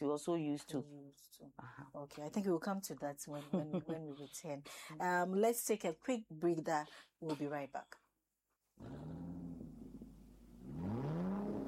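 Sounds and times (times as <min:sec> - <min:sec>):
speech: 0:00.0 - 0:08.0, 0:08.8 - 0:09.3
car engine revving: 0:08.9 - 0:11.6.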